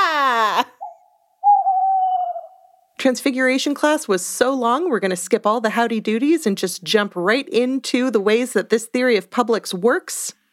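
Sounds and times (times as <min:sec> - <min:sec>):
owl hooting: 0:00.6 - 0:03.0
speech: 0:03.0 - 0:10.4.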